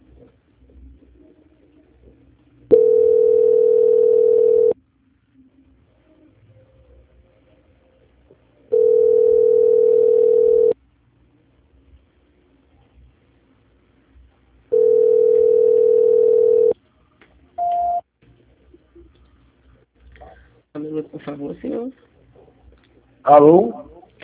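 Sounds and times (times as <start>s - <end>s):
telephone line tones during a call transfer: 2.7s - 4.8s, 8.7s - 10.8s, 14.7s - 16.8s
speech: 21.3s - 22.1s, 23.3s - 23.8s.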